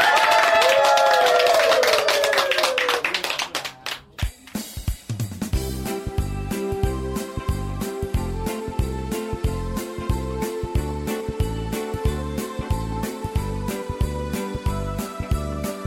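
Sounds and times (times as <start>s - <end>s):
cheering voices: 0.0s - 3.9s
crowd clapping: 0.0s - 4.7s
music: 3.8s - 15.8s.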